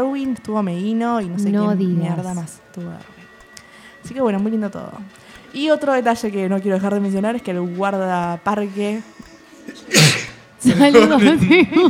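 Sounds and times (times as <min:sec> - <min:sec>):
speech: 0:00.0 - 0:03.2, 0:04.0 - 0:11.8
person sneezing into a shirt: 0:09.8 - 0:10.4
laughter: 0:10.6 - 0:11.8.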